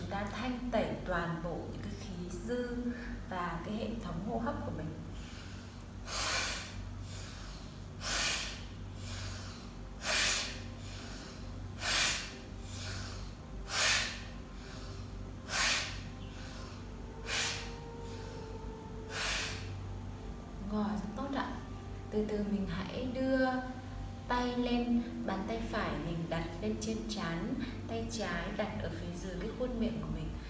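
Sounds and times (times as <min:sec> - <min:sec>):
low hum: 0:00.0 - 0:30.4
speech: 0:00.1 - 0:05.1, 0:25.3 - 0:30.3
deep inhales in a breathing exercise: 0:05.1 - 0:19.8
forceful exhales in a breathing exercise: 0:05.2 - 0:18.4, 0:19.1 - 0:19.8.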